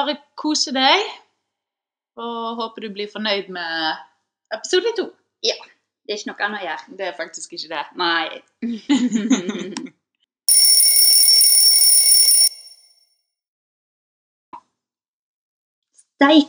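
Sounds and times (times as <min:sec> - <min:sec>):
speech: 0:00.0 - 0:01.2, 0:02.2 - 0:10.0, 0:16.2 - 0:16.4
phone ringing with electronic trill: 0:10.5 - 0:12.8.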